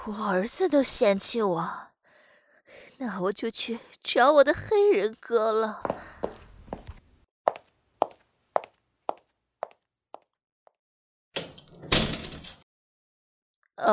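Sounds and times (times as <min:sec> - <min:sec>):
speech: 0:00.0 - 0:01.9, 0:02.7 - 0:06.2
door rattling open: 0:11.4 - 0:12.6.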